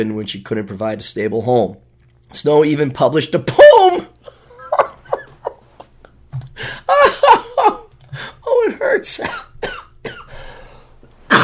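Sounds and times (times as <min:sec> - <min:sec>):
speech: 0:00.0 - 0:04.2, 0:09.0 - 0:09.4
laughter: 0:04.2 - 0:06.1, 0:06.9 - 0:07.9
person coughing: 0:09.2 - 0:10.4, 0:11.3 - 0:11.4.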